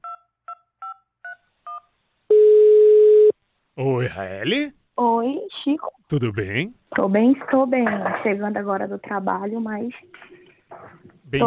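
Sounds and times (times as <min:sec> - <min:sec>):
telephone dialing beeps of an outgoing call: 0:01.7 - 0:03.3
speech: 0:03.8 - 0:10.3.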